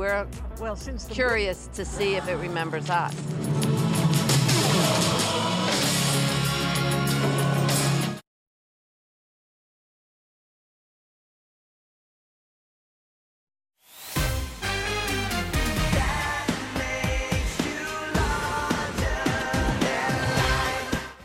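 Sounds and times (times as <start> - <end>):
speech: 0.0 - 3.7
boy band pop song: 1.8 - 8.2, 14.8 - 21.2.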